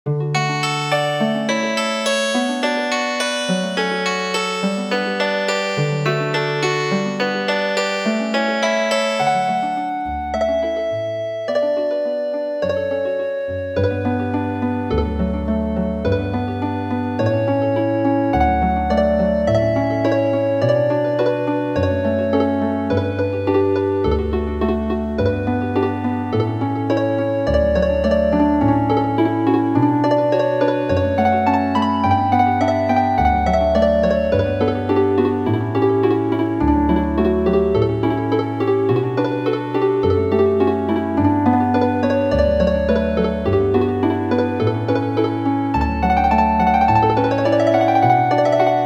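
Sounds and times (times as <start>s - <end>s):
harp piece: 0.1s - 48.8s.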